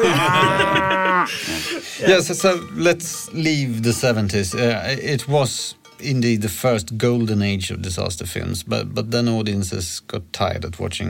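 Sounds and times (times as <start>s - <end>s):
cow mooing: 0.0s - 1.3s
laughter: 0.0s - 2.2s
faint hiss: 0.0s - 11.0s
speech: 1.2s - 11.0s.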